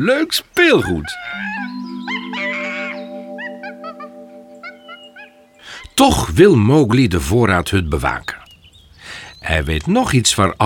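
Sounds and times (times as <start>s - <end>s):
speech: 0.0s - 1.7s, 6.0s - 8.4s, 9.4s - 10.6s
monkeys chattering and screeching while playing with a fake snake: 0.8s - 4.1s.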